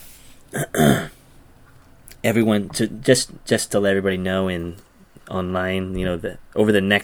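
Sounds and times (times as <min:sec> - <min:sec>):
person clearing throat: 0:00.5 - 0:01.2
speech: 0:02.2 - 0:07.0.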